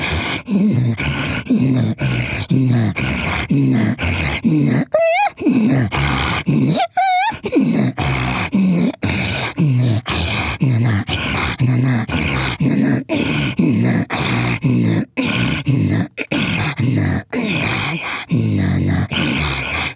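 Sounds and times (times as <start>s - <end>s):
Chukchi throat-singing wheezes and grunts imitating snorting reindeer: 0.0s - 19.9s.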